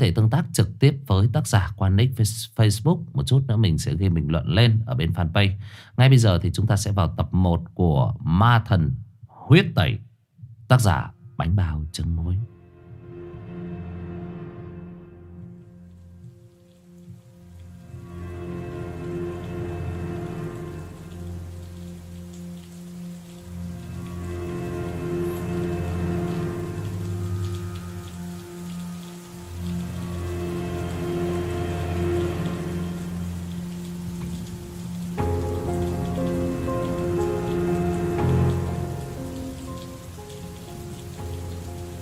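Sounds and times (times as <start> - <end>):
speech: 0.0 - 10.1, 10.7 - 12.5
low sustained tones: 12.5 - 42.0
heavy rain pouring onto an asphalt road: 16.6 - 42.0.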